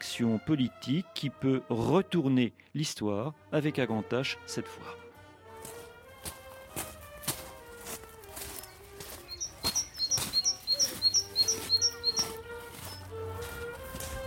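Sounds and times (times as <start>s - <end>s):
speech: 0.2s - 5.0s
footsteps and shuffling taps: 5.6s - 14.2s
great tit singing at a mine pithead: 8.6s - 13.0s.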